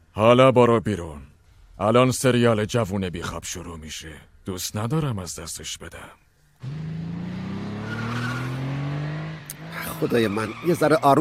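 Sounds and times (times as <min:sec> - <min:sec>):
speech: 0:00.2 - 0:07.2, 0:10.0 - 0:11.2
car engine revving while driving hard: 0:06.6 - 0:11.2
car tires skidding with a loud sustained squeal: 0:06.6 - 0:11.2.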